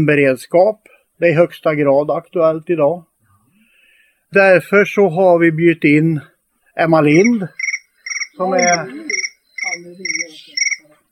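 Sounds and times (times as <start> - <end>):
speech: 0.0 - 3.1, 4.3 - 7.6, 8.4 - 9.1
grasshopper-like chirping: 7.0 - 10.9.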